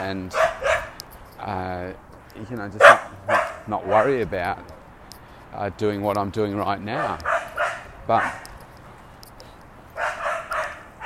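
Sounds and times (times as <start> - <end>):
speech: 0.0 - 0.7, 1.4 - 4.8, 5.5 - 7.3, 8.1 - 8.5
low steady noise: 0.0 - 11.0
dog on a leash barking: 0.3 - 1.0, 2.8 - 4.2, 6.9 - 8.5, 10.0 - 11.0.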